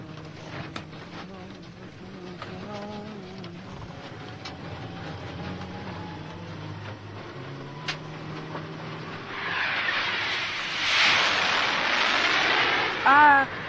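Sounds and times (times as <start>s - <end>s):
airplane engine roar: 0.0s - 13.6s.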